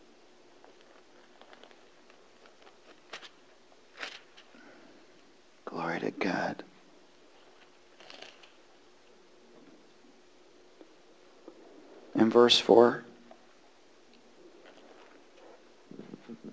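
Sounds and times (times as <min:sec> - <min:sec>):
many paper Bible pages turning in an audience: 0:00.6 - 0:04.6, 0:07.4 - 0:08.6
speech: 0:12.3 - 0:13.1.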